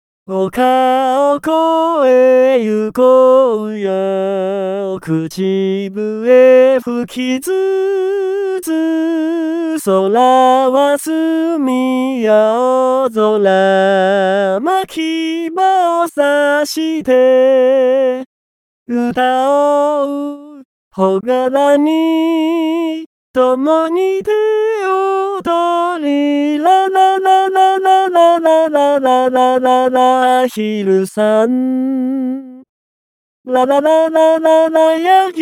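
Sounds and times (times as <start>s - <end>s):
man singing a traditional vocal: 0.3s - 18.3s, 18.9s - 32.7s, 33.5s - 35.4s.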